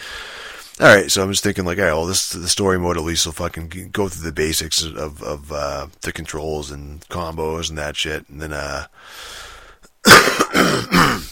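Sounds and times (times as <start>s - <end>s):
speech: 0.8s - 9.5s, 10.7s - 11.2s
phlegmy throat clearing: 10.0s - 11.2s.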